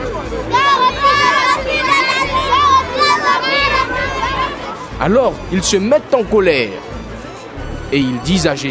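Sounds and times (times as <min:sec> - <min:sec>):
children shouting in a temple: 0:00.3 - 0:04.9
speech: 0:05.0 - 0:07.0, 0:07.9 - 0:08.6.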